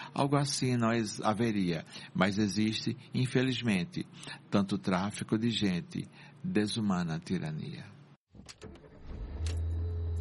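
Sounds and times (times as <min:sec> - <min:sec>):
speech: 0:00.2 - 0:08.8
app-hailed car arriving with low engine hum: 0:08.9 - 0:10.1.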